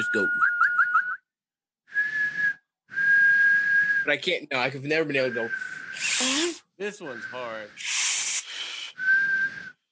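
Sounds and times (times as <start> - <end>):
speech: 0.0 - 0.5, 4.0 - 8.0
person whistling: 0.0 - 1.3, 1.9 - 4.1, 5.2 - 6.5, 7.1 - 9.8.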